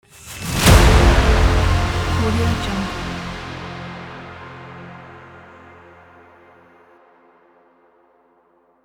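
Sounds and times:
trailer hit: 0.2 - 6.2.

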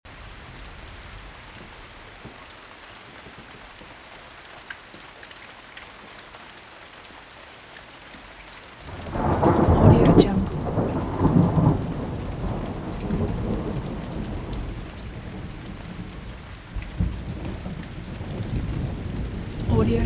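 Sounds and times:
gentle rain: 0.0 - 20.0
gentle thunder rolling: 8.9 - 20.0.

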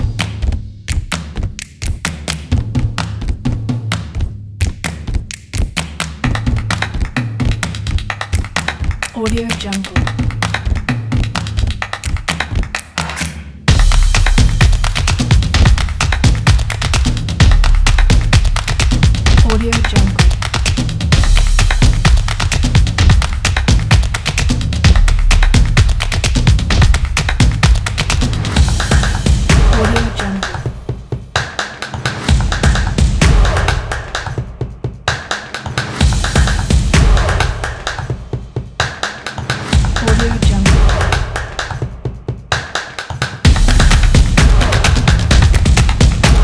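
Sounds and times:
hand clap: 0.2 - 30.7, 31.4 - 38.2, 38.8 - 42.0, 42.5 - 46.4.

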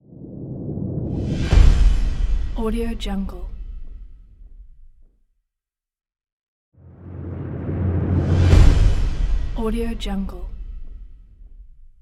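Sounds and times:
trailer drum hits: 1.0 - 4.9, 6.8 - 12.0.

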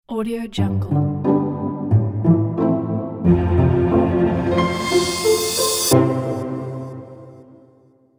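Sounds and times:
elegant pizzicato logo: 1.0 - 7.4.

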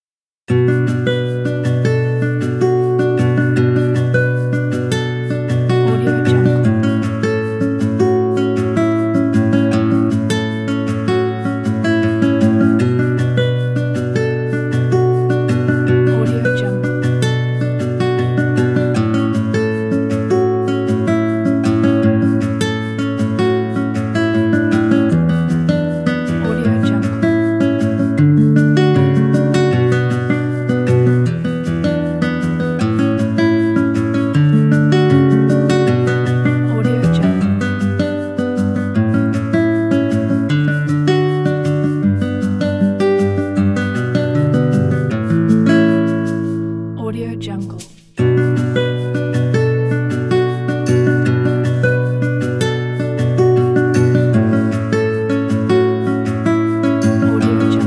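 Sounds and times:
sad guitar: 0.5 - 57.8.

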